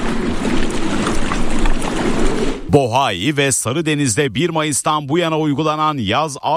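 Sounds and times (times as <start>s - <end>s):
water noise in harbour: 0.0s - 3.3s
fishing boat engines rumbling as boats leave harbour: 0.0s - 6.5s
speech: 2.7s - 6.5s.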